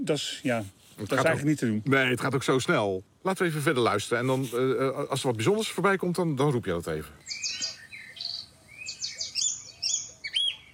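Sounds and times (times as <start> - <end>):
speech: 0.0 - 7.5
faint steady hiss: 0.0 - 10.7
Eurasian oystercatcher calls: 7.2 - 10.7.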